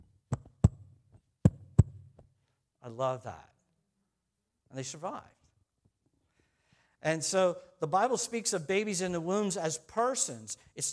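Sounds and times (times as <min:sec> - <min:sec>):
heartbeat: 0:00.3 - 0:00.8, 0:01.4 - 0:02.1
speech: 0:02.9 - 0:03.5, 0:04.7 - 0:05.4, 0:07.0 - 0:10.9.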